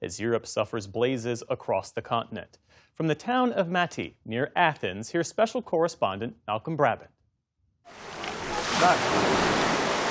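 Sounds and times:
speech: 0.0 - 7.2, 8.8 - 9.6
sea waves washing on a beach at Mati near Athens Greece: 7.9 - 10.0.

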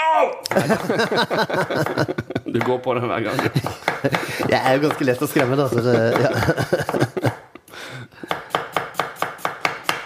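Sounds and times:
speech: 0.2 - 7.3
laughter: 0.4 - 7.7
knife chopping red cabbage on a board: 8.3 - 10.0.

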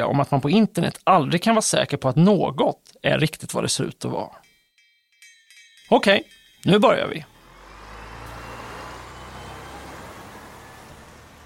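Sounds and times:
speech: 0.0 - 4.4, 5.9 - 7.3
broad road noise: 6.3 - 11.4
bus engine rumbling at a stop: 6.6 - 11.4
passengers stepping off a bus: 7.3 - 11.4.

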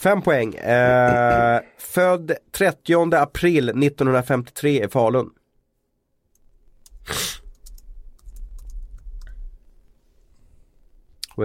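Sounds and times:
speech: 0.0 - 5.4, 7.1 - 7.4
typing on a computer keyboard: 6.8 - 9.3.

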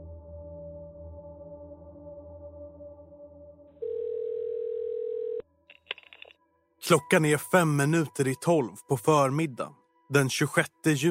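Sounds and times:
phone outgoing ringing tone: 3.8 - 5.5
speech: 6.9 - 11.0.

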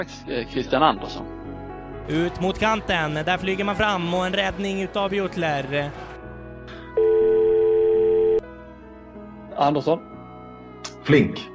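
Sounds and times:
speech: 0.0 - 1.4, 2.1 - 6.1, 9.6 - 10.1, 11.1 - 11.5
electronic ringback tone of an outgoing phone call: 7.0 - 8.4.

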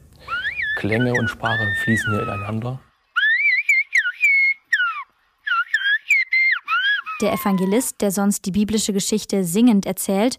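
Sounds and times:
human whistling in Silbo Gomero whistled language of La Gomera: 0.2 - 7.8
speech: 0.8 - 2.9, 7.2 - 10.3.

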